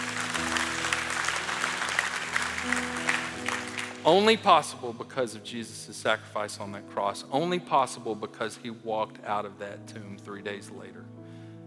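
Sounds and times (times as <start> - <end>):
large group clapping: 0.0 - 4.6
speech: 4.0 - 11.2.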